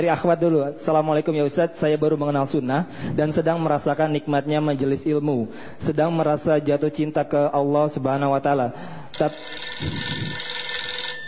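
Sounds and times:
speech: 0.0 - 10.3
telephone ringing with an electronic tone: 9.1 - 11.2.

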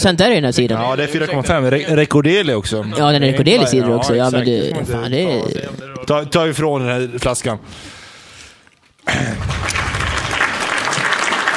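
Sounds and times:
speech: 0.0 - 8.0, 9.0 - 10.0
crowd applause at a live show: 9.1 - 11.5.

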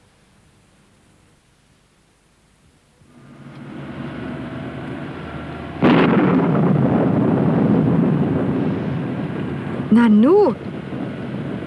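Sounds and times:
thunder: 5.3 - 9.9, 10.6 - 11.6
speech: 10.0 - 10.7.

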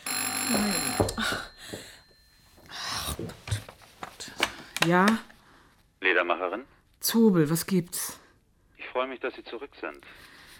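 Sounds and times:
telephone ringing with a high-pitched bell tone: 0.0 - 2.6
speech: 0.5 - 1.9, 4.8 - 5.3, 6.1 - 8.2, 9.0 - 10.3.

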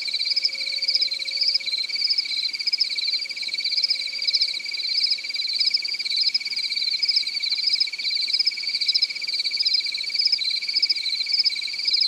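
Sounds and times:
cricket shrill pulsed trill with brighter chirps: 0.0 - 12.0.

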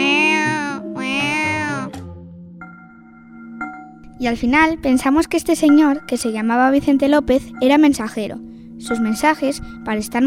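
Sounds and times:
cat meowing: 0.0 - 2.0
speech: 4.2 - 10.2.

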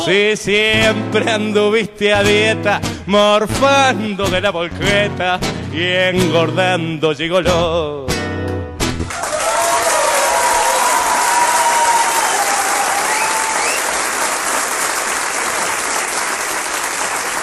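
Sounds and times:
speech: 0.1 - 8.1
audience applause after a tango song: 9.1 - 17.3.

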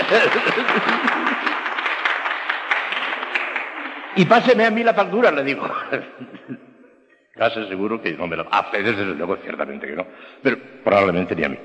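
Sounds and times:
laughter: 0.0 - 2.6, 3.2 - 6.8
audience clapping: 0.0 - 5.3
speech: 0.1 - 1.2, 4.2 - 6.7, 7.4 - 11.6.

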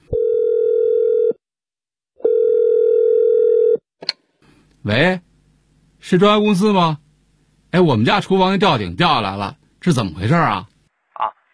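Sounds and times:
telephone tone while calling a renovation company: 0.1 - 1.4, 2.2 - 3.8
speech: 4.8 - 5.3, 6.0 - 7.0, 7.7 - 10.7.

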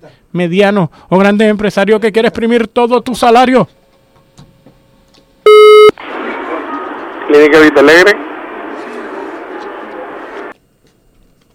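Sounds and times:
speech: 0.0 - 3.8, 7.3 - 8.3
busy tone after a dropped phone call to a hardware store: 5.5 - 5.9.

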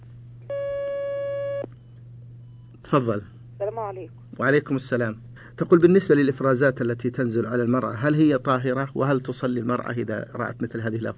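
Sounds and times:
telephone line tone as a call comes in: 0.5 - 1.7
speech: 2.9 - 11.1.

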